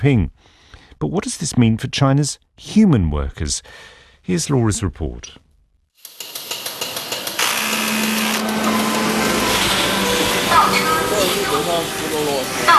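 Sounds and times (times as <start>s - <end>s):
speech: 0.0s - 0.4s, 1.0s - 5.4s, 11.7s - 12.7s
factory machinery clattering in rhythmic knocks: 6.1s - 12.7s
factory machinery mechanical whir and hum: 6.6s - 12.7s
whining machine tones: 7.3s - 12.7s.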